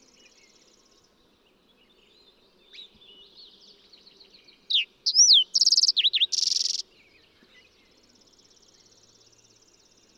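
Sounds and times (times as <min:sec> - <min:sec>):
fox sparrow singing: 0:04.7 - 0:06.8.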